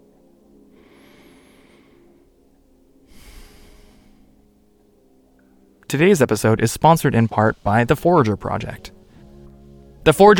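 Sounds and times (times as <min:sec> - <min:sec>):
deep breath: 0:00.7 - 0:02.4, 0:03.1 - 0:04.5
speech: 0:05.9 - 0:08.9, 0:10.0 - 0:10.3.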